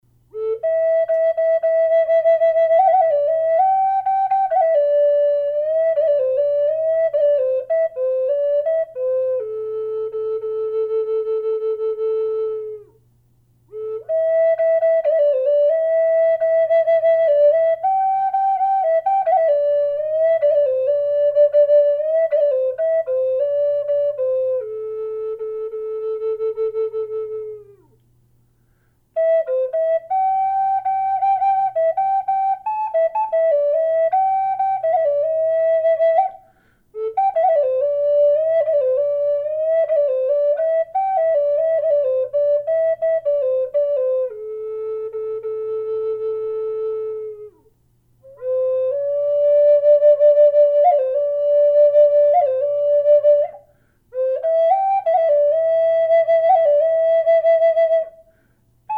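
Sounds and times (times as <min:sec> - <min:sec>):
flute in A minor: 0:00.2 - 0:13.0, 0:13.7 - 0:28.0, 0:29.1 - 0:58.9.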